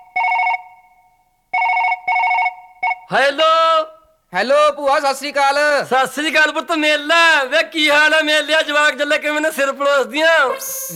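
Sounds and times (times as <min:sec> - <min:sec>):
telephone ringing on an outgoing phone call: 0:00.0 - 0:03.1
speech: 0:03.1 - 0:10.9.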